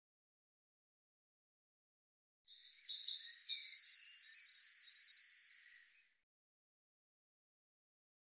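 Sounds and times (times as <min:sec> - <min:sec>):
Eurasian blue tit call with rattling trill: 0:02.6 - 0:05.8.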